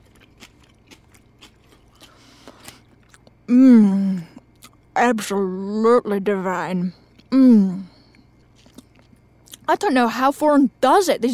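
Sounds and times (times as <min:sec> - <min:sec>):
crisp crunching bites into freshly made food: 0:00.0 - 0:03.4, 0:08.4 - 0:09.7
speech: 0:03.5 - 0:03.9, 0:05.1 - 0:07.9, 0:09.7 - 0:11.3.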